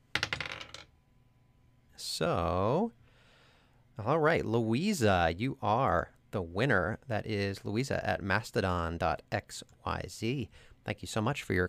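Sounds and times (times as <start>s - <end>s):
dice clattering across a hard surface: 0.2s - 0.9s
speech: 2.1s - 3.0s, 4.0s - 11.6s.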